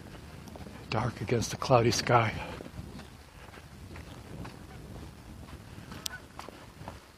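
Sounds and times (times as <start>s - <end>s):
speech: 0.9s - 2.6s
flock of geese honking overhead: 5.9s - 6.3s.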